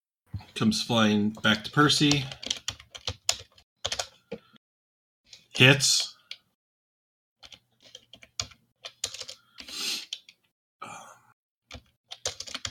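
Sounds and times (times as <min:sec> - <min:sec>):
speech: 0:00.6 - 0:02.4, 0:05.6 - 0:06.1
typing on a computer keyboard: 0:02.1 - 0:04.4, 0:07.4 - 0:10.4, 0:11.7 - 0:12.6.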